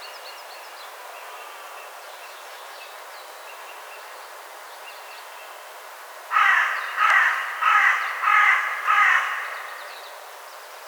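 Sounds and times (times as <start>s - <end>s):
carrion crow Corvus corone cawing: 6.3s - 9.8s.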